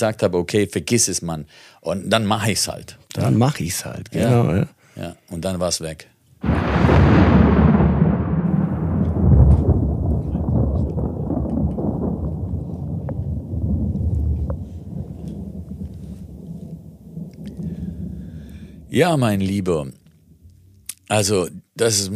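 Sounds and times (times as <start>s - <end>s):
speech: 0.0s - 7.2s, 19.0s - 20.0s, 21.1s - 22.1s
thunder rumbling: 6.4s - 20.9s.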